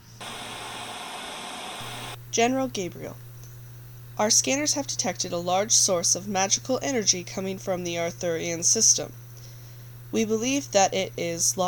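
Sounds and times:
quiet hum: 0:00.0 - 0:11.6
radio static before a transmission: 0:00.2 - 0:02.2
speech: 0:02.4 - 0:03.2, 0:04.2 - 0:09.2, 0:10.1 - 0:11.6.

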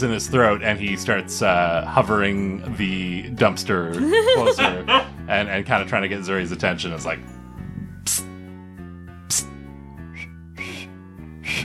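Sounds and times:
speech: 0:00.0 - 0:07.4, 0:08.0 - 0:08.3, 0:09.3 - 0:09.6
laughter: 0:04.0 - 0:05.1
breathy failed whistling over a hummed voiced tone: 0:10.0 - 0:11.6.

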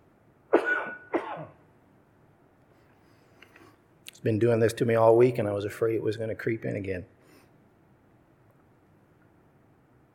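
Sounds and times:
loud coughs: 0:00.5 - 0:01.6
speech: 0:04.2 - 0:07.2.

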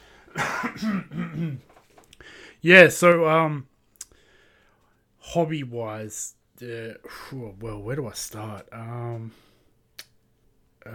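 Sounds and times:
person clearing throat: 0:00.4 - 0:01.7
speech: 0:00.4 - 0:01.7, 0:02.6 - 0:03.7, 0:05.3 - 0:09.5.

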